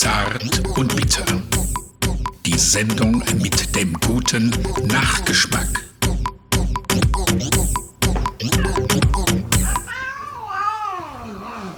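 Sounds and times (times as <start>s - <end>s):
rhythmic percussive music: 0.0s - 9.9s
speech: 2.7s - 5.9s
tomcat with claw stuck in a sofa meowing: 8.4s - 11.7s.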